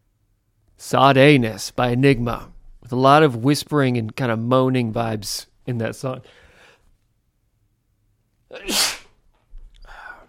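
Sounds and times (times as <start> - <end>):
speech: 0.8 - 6.4, 8.5 - 9.0
loud sneeze: 8.5 - 9.2.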